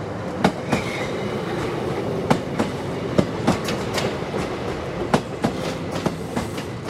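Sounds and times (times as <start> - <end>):
passenger train moving out of a station at low speed: 0.0 - 6.8
passenger train wheel clacks over rail joints: 2.3 - 6.8.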